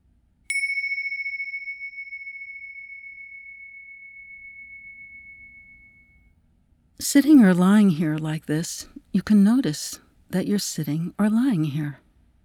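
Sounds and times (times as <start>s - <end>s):
meditation bell struck to start a meditation exercise: 0.5s - 6.3s
speech: 7.0s - 12.0s.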